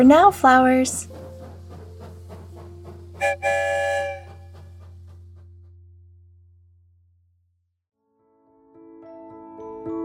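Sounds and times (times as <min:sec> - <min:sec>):
speech: 0:00.0 - 0:01.1, 0:03.2 - 0:04.2
train whistle blowing: 0:03.2 - 0:04.7.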